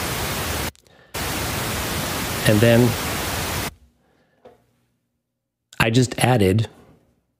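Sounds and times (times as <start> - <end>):
pink noise test signal: 0.0 - 3.8
speech: 2.5 - 3.0, 5.8 - 6.8.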